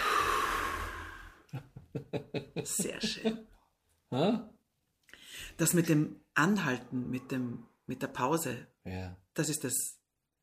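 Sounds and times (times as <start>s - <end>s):
soft breathing in and out: 0.0s - 1.5s, 5.1s - 5.6s
laughter: 1.5s - 3.4s
speech: 1.5s - 4.6s, 5.4s - 10.0s.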